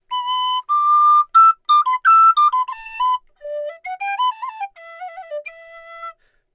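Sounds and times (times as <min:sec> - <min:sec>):
flute player melody ripped from a game: 0:00.1 - 0:06.2.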